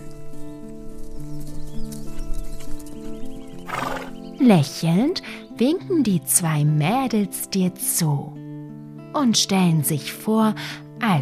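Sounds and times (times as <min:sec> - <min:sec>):
hooves of two horses clip-clopping: 0:00.0 - 0:04.3
horse whinnying and neighing: 0:03.6 - 0:04.2
speech: 0:04.4 - 0:08.4, 0:09.2 - 0:11.2.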